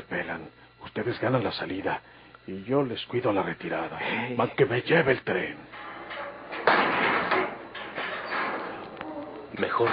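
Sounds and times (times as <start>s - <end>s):
speech: 0.3s - 6.2s, 9.6s - 9.9s
prison cell door being opened: 5.7s - 9.9s
scraping and rattling of prison cell door: 5.7s - 9.9s.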